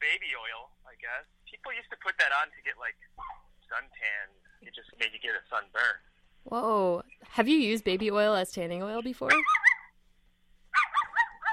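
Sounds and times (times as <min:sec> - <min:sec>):
speech: 0:01.0 - 0:09.6
dog barking in sharp high-pitched yaps: 0:03.2 - 0:03.5, 0:09.3 - 0:09.9, 0:10.7 - 0:11.5.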